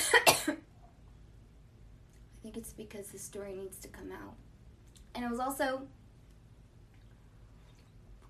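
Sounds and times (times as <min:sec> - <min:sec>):
person coughing: 0:00.0 - 0:00.7
speech: 0:02.6 - 0:04.5, 0:05.2 - 0:06.0.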